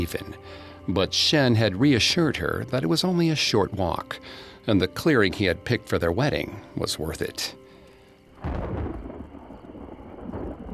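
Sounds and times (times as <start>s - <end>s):
speech: 0.0s - 7.6s
loud crack of thunder rolling into a heavy rumble: 8.4s - 10.7s.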